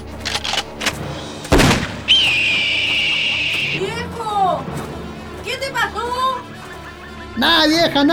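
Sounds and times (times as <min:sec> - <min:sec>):
laughter: 0:00.0 - 0:08.1
gunshot fired at a bird: 0:00.3 - 0:03.8
speech: 0:07.4 - 0:08.1.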